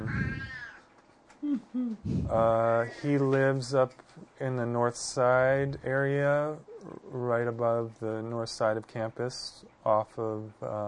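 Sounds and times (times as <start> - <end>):
cat meowing: 0.0 - 0.8
speech: 1.5 - 10.8.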